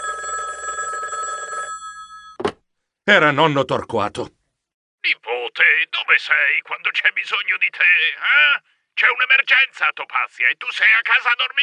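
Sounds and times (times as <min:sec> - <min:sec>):
telephone bell ringing with a bright metallic trill: 0:00.0 - 0:02.4
speech: 0:03.1 - 0:04.4, 0:05.0 - 0:11.6.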